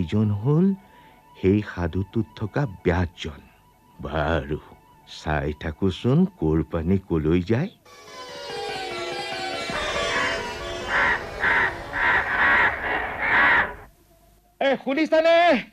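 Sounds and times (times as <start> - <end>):
speech: 0.0 - 8.2, 14.7 - 15.7
sharp high bird calls: 8.0 - 13.9
birds calling with harsh crow-like caws: 9.7 - 13.9.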